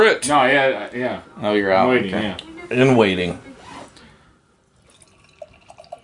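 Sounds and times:
speech: 0:00.0 - 0:03.5
beer pouring into a tulip glass: 0:04.8 - 0:06.0.

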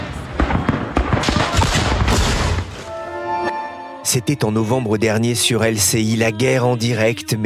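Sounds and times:
gunfire in trench fighting before dawn: 0:00.0 - 0:02.8
speech: 0:04.1 - 0:07.4.

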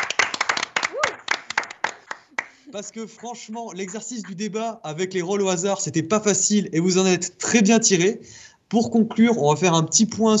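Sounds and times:
guests clapping for themselves at the end of a debate segment: 0:00.0 - 0:04.1
speech: 0:02.7 - 0:10.3.

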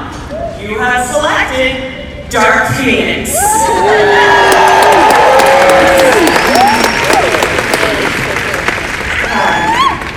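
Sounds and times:
speech: 0:00.6 - 0:04.5
scattered cheers from the crowd: 0:03.3 - 0:08.4, 0:09.2 - 0:10.1
large crowd applauding: 0:03.9 - 0:10.1.

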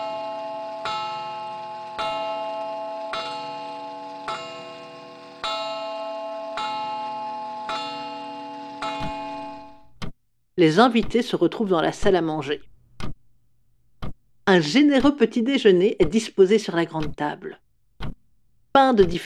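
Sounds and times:
clock striking the hour with ringing chimes: 0:00.0 - 0:09.9
speech: 0:10.6 - 0:12.7, 0:14.5 - 0:17.6, 0:18.8 - 0:19.2.

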